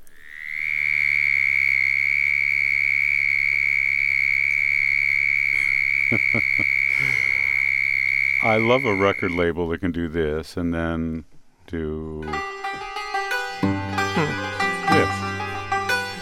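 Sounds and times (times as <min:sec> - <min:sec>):
southern toad high-pitched trill: 0:00.0 - 0:09.5
laughter: 0:05.6 - 0:07.5, 0:14.0 - 0:16.2
speech: 0:06.1 - 0:06.7, 0:08.5 - 0:12.5.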